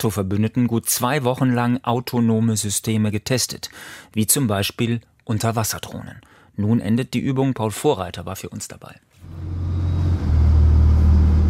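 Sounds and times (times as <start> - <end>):
speech: 0.0 - 9.6
inflatable boat outboard motor throttling down near the coast of Portugal: 9.3 - 11.4.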